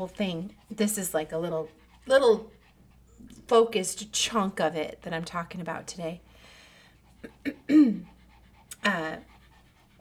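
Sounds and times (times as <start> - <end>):
speech: 0.0 - 2.6, 3.5 - 6.3, 7.2 - 8.1, 8.8 - 9.3
puppy panting heavily with a whiny edge: 0.0 - 9.9.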